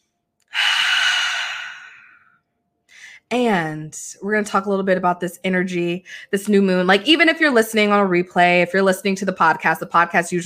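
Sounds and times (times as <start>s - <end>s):
deep slow breathy exhale: 0.5s - 3.2s
speech: 3.3s - 10.4s.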